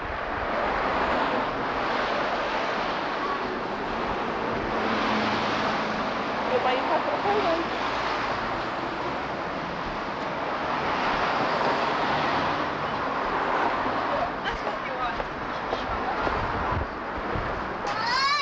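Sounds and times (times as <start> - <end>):
loud roar of passing car traffic on a busy street: 0.0 - 18.3.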